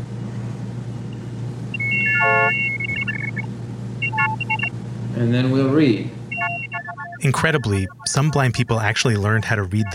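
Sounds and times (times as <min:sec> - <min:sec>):
optophone reading machine chord-like electronic beeps: 0:01.7 - 0:04.7, 0:06.3 - 0:08.6, 0:09.7 - 0:09.9
speech: 0:04.2 - 0:06.2, 0:07.2 - 0:09.9.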